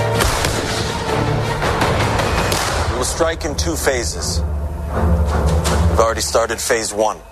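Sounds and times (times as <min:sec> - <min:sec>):
cannon fire from an army bombardment: 0:00.1 - 0:01.1, 0:02.4 - 0:03.3
speech: 0:03.2 - 0:07.3.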